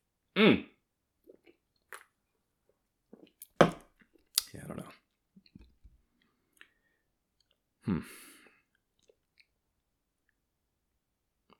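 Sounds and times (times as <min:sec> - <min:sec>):
speech: 0:00.4 - 0:00.7
person sipping and swallowing beer: 0:03.2 - 0:03.8
faint wet mouth clicks: 0:03.4 - 0:03.8, 0:04.4 - 0:04.7.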